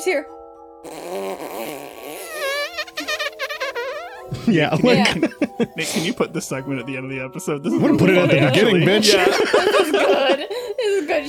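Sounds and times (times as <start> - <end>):
speech: 0.0 - 1.8, 4.4 - 11.2
long wobbly fart blown close to the microphone: 0.8 - 5.2
laughter: 3.0 - 6.7, 7.7 - 11.2.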